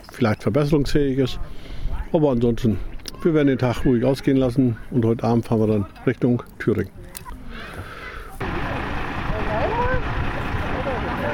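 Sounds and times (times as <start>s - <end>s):
speech: 0.2s - 7.9s
vehicle engine with horse trailer rumbling: 6.4s - 11.3s
vehicle engine starting: 8.4s - 11.3s.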